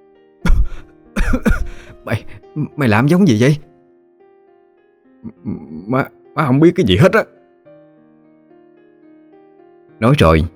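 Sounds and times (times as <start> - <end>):
woman coughing and choking on a mouthful of rice: 0.5 - 1.8
speech: 0.8 - 3.7, 5.9 - 7.4, 10.0 - 10.5.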